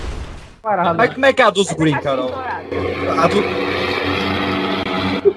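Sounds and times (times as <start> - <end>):
speech: 0.6 - 3.9
airplane roaring overhead: 1.7 - 5.3.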